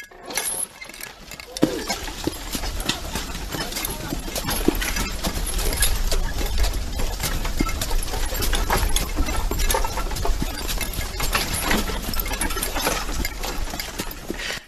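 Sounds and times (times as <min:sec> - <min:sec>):
harness jingling: 0:00.0 - 0:14.6
hooves of early horse-drawn ambulance clopping: 0:00.0 - 0:14.6
wooden cart rattling: 0:00.0 - 0:14.6
low rumbling of wheels: 0:00.4 - 0:14.6.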